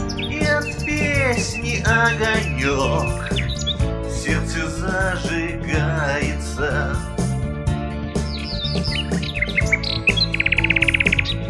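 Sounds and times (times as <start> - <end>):
nightingale singing: 0.0 - 5.4, 8.2 - 11.4
instrumental music: 0.0 - 11.4
speech: 0.3 - 3.4.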